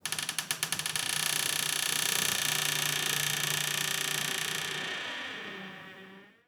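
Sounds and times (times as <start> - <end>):
wooden door: 0.0 - 4.9.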